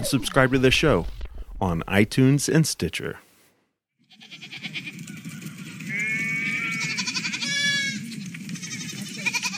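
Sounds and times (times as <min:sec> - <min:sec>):
speech: 0:00.0 - 0:03.2
sheep bleating: 0:04.0 - 0:05.0, 0:05.6 - 0:09.5.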